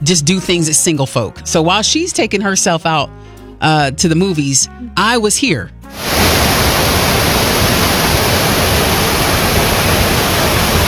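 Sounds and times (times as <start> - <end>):
speech: 0.0 - 6.4
waterfall rushing at a state park: 6.0 - 10.8.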